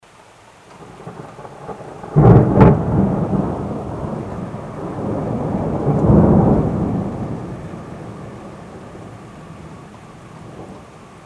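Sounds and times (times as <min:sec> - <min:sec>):
thunder: 0:00.8 - 0:10.9.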